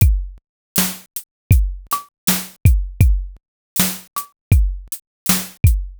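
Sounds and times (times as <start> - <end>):
lofi drum loop at 80 bpm: 0.0 - 5.9.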